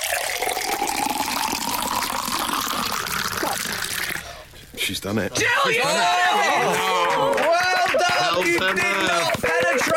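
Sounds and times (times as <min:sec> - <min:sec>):
water poured into a container over a carpet: 0:00.0 - 0:04.4
speech: 0:04.8 - 0:09.9.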